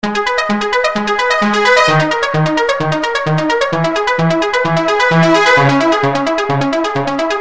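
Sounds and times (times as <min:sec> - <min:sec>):
ARP Hybrid Trombone synthesizer: 0:00.0 - 0:07.3.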